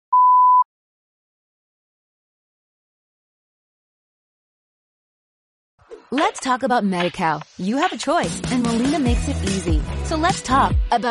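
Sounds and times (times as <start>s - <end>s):
mid-pitched electronic beep: 0.1s - 0.6s
speech: 6.1s - 11.0s.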